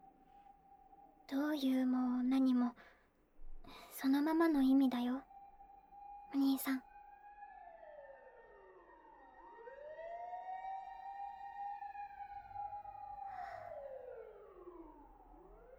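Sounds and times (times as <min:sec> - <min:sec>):
speech: 0:01.3 - 0:03.0, 0:03.6 - 0:05.3, 0:06.3 - 0:06.9
fire engine sirens wailing heading up a mountain to a fire: 0:06.0 - 0:15.7.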